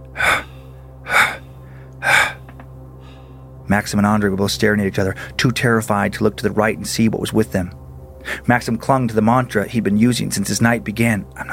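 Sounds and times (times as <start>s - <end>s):
loud breathy inhalations: 0.0s - 3.6s
speech: 3.7s - 7.8s, 8.4s - 11.5s.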